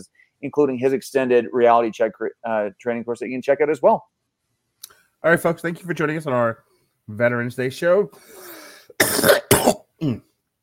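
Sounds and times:
speech: 0.0s - 4.2s, 5.2s - 9.4s, 10.0s - 10.3s
faint throat sound: 8.4s - 10.3s
man coughing: 9.0s - 10.3s.

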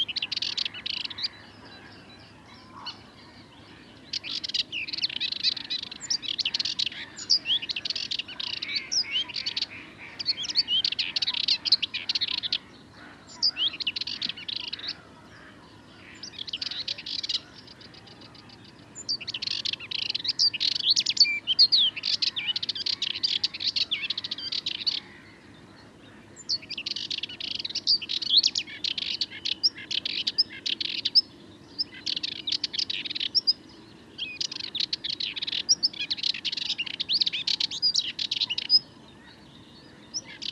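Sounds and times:
Sardinian warbler singing: 0.0s - 40.5s
waking birds calling faintly: 0.0s - 40.5s.

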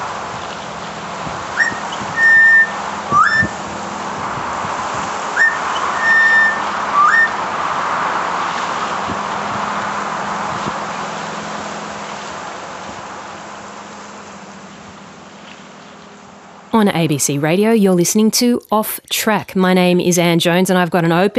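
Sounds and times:
constant rushing background noise: 0.0s - 21.3s
female butcherbird calling for her mate: 1.5s - 3.6s, 5.3s - 7.4s
speech: 16.8s - 21.3s.

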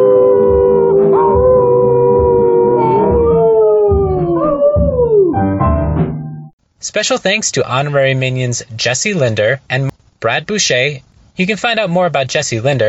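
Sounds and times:
drawn-out howls: 0.0s - 5.3s
speech: 6.9s - 12.8s.

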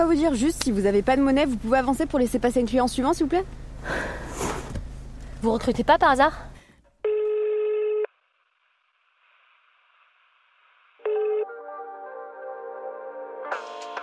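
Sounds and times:
speech: 0.0s - 4.2s, 5.4s - 6.5s
telephone ring tone: 7.1s - 8.1s, 11.0s - 11.9s
connected phone line tone: 11.0s - 12.3s.

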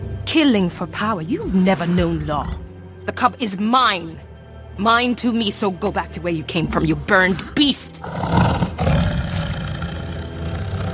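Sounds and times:
speech: 0.3s - 8.4s
tiger roaring: 7.3s - 10.9s.

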